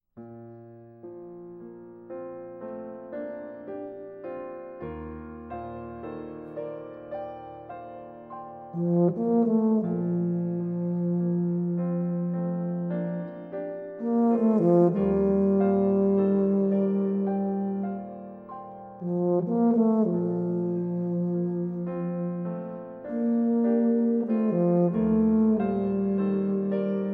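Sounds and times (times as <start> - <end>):
piano: 0.0 - 27.1
tuba: 7.6 - 27.1.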